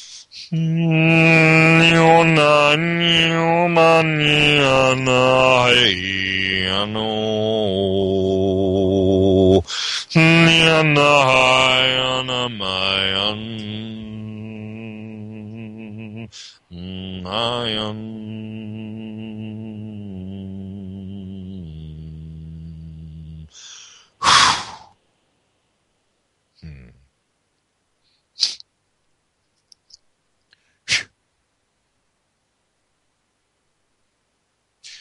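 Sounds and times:
single voice singing long sustained wordless tones: 0.0s - 23.6s
speech: 0.5s - 1.3s, 1.9s - 6.1s, 10.2s - 13.8s.

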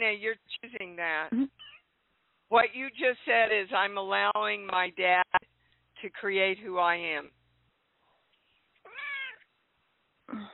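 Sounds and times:
speech: 0.0s - 1.5s, 2.5s - 7.4s
cat meowing: 8.8s - 9.5s.

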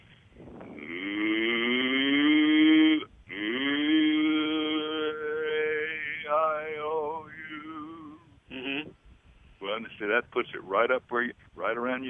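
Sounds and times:
person imitating a cow's moo as a singing voice exercise: 0.7s - 8.9s
speech: 10.1s - 12.0s.

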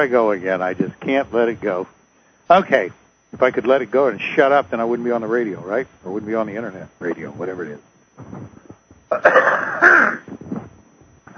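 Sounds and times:
speech: 0.0s - 9.6s
person coughing: 9.1s - 10.3s
harsh throat clearing: 9.1s - 10.4s.

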